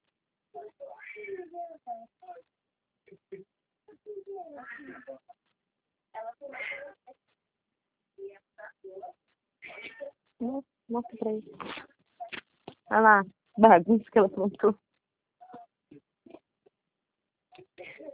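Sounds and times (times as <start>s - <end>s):
speech: 0.7s - 5.4s, 8.2s - 11.9s, 12.9s - 14.8s
cat meowing stuck up a tree: 4.6s - 5.2s, 6.5s - 7.0s, 9.6s - 10.1s.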